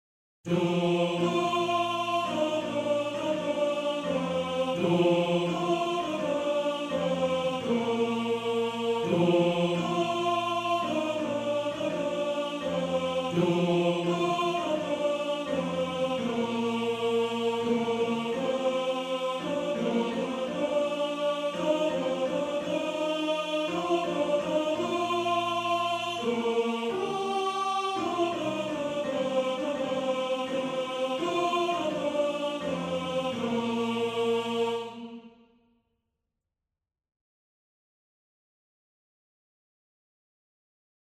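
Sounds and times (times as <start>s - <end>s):
first tenor singing in a male choir: 0.5s - 35.3s.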